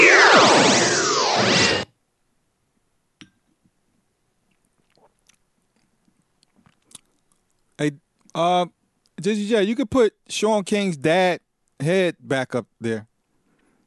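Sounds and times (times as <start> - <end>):
loud rushing burst: 0.0 - 1.8
person sipping a drink with slurps and a swallow: 4.5 - 7.5
speech: 7.8 - 13.1.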